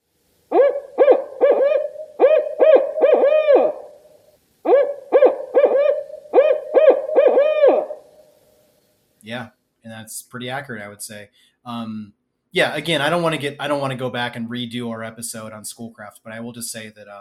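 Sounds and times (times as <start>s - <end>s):
barred owl eight-note hooting call: 0.5s - 8.4s
speech: 9.3s - 17.1s.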